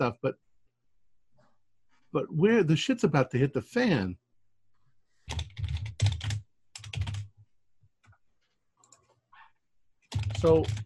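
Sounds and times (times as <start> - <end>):
speech: 0.0 - 0.5, 2.1 - 4.2, 10.4 - 10.8
loud typing on a computer keyboard: 5.3 - 7.3, 10.0 - 10.8.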